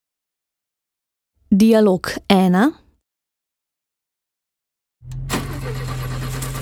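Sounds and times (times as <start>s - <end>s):
speech: 1.5s - 2.8s
car engine cranking, starting and idling: 5.0s - 6.6s.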